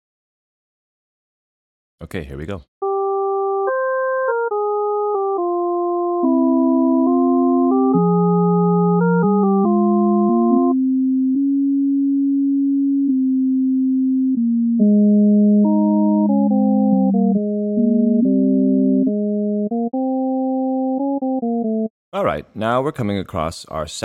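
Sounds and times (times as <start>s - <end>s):
speech: 2.0s - 2.8s, 22.2s - 24.0s
fugue played as pure sine tones in three voices: 2.8s - 21.9s.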